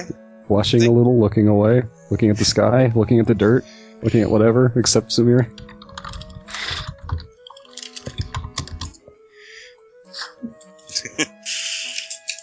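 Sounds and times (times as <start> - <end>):
speech: 0.0 - 5.8
rapid computer keyboard typing: 5.5 - 9.0.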